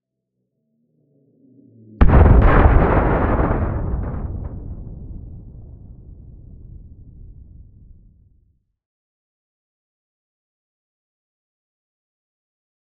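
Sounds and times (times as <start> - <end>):
explosions: 2.0 - 8.4.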